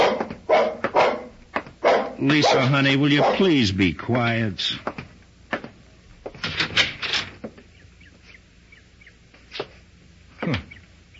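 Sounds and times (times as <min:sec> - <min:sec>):
dog barking at the door: 0:00.0 - 0:03.6
speech: 0:02.2 - 0:05.0.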